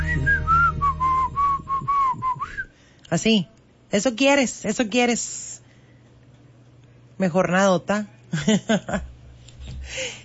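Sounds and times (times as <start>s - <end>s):
person whistling a short tune: 0.0s - 2.7s
low hum: 0.0s - 10.2s
speech: 3.1s - 5.5s, 7.2s - 9.1s, 9.9s - 10.2s.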